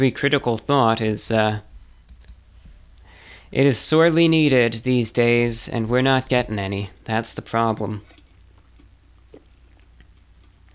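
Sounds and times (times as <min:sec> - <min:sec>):
speech: 0:00.0 - 0:01.7, 0:03.5 - 0:08.2
steady low hum: 0:00.0 - 0:10.7
person sipping water with a soft gulp: 0:08.0 - 0:10.7.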